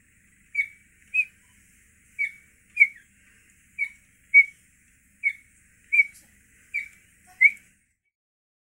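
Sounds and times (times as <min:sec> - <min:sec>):
cheetah giving sharp high squeaky chirps: 0:00.5 - 0:03.2, 0:03.8 - 0:04.6, 0:05.2 - 0:07.7.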